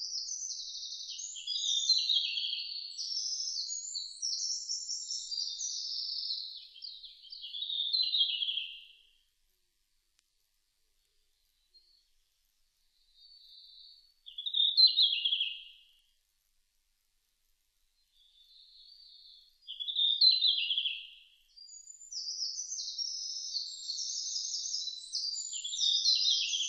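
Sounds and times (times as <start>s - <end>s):
red-flanked bluetail twittering song: 0.0s - 9.2s, 12.9s - 16.0s, 18.0s - 26.6s.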